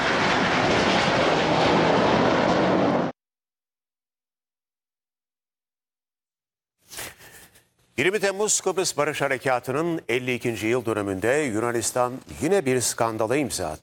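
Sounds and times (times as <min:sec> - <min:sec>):
F-16 fighter jet roaring during an aerobatic display over Girne: 0:00.0 - 0:03.2
speech: 0:08.0 - 0:13.8.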